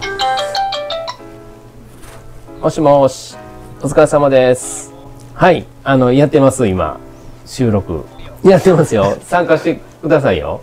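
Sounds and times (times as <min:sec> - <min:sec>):
mobile phone ringtone for an incoming call: 0:00.0 - 0:01.3
speech: 0:02.6 - 0:04.8, 0:05.4 - 0:10.6
laughter: 0:08.5 - 0:09.8.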